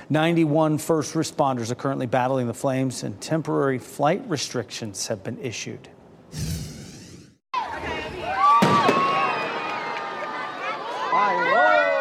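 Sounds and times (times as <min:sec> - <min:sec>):
speech: 0:00.1 - 0:06.6
crowd murmuring and cheering at outdoor fireworks show: 0:07.6 - 0:12.0
outdoor fireworks show bang: 0:08.6 - 0:09.2.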